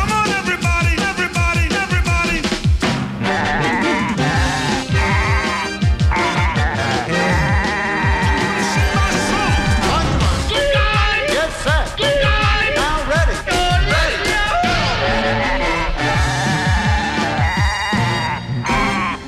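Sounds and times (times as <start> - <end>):
loud upbeat dance track with pounding beat: 0.0 - 19.2
goats bleating: 3.3 - 9.9, 10.6 - 19.2.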